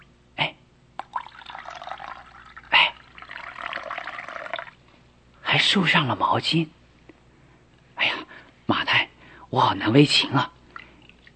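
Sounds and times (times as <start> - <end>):
water pouring into a basin for washing feet: 1.0 - 4.8
speech: 5.6 - 6.8, 9.6 - 10.6.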